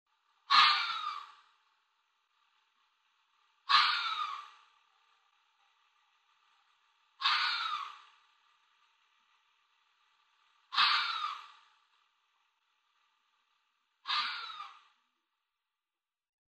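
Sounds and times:
red fox giving harsh hoarse screams: 0:00.5 - 0:01.4, 0:03.7 - 0:04.6, 0:07.2 - 0:08.2, 0:10.7 - 0:11.7, 0:14.0 - 0:15.0.

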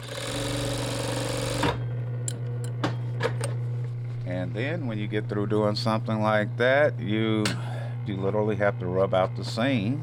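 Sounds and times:
fur sewing machine sewing fur: 0:00.0 - 0:01.8
low steady hum: 0:01.8 - 0:10.0
speech: 0:04.5 - 0:10.0.

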